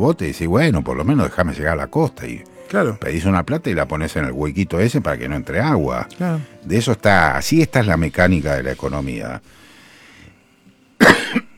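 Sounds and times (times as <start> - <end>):
speech: 0.0 - 9.6
person coughing: 11.0 - 11.5.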